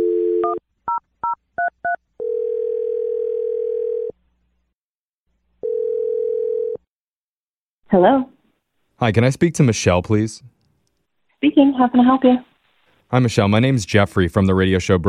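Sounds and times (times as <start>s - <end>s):
phone ringing tone: 0.0s - 0.6s, 1.6s - 4.2s, 5.6s - 6.8s
speech: 7.9s - 8.3s, 9.0s - 10.5s, 11.4s - 12.5s, 13.1s - 15.0s.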